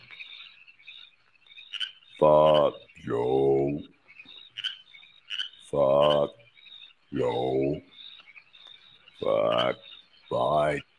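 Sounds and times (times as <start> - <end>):
frogs croaking in a high buzzing chorus in a beer commercial: 0.0 - 10.9
speech: 2.2 - 3.9.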